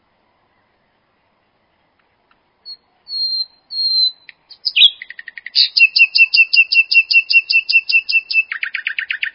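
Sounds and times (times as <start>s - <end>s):
common nightingale singing: 2.6s - 9.3s.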